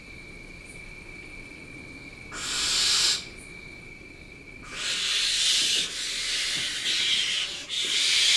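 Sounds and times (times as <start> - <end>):
barn owl producing long rasping hisses: 2.3 - 3.4, 4.6 - 8.3.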